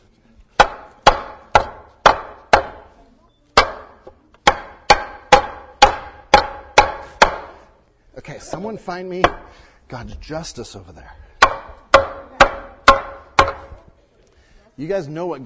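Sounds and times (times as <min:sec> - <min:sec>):
hammer striking wood: 0:00.5 - 0:03.0, 0:03.6 - 0:07.7, 0:09.2 - 0:09.5, 0:11.4 - 0:13.8
speech: 0:08.4 - 0:11.2, 0:14.8 - 0:15.4.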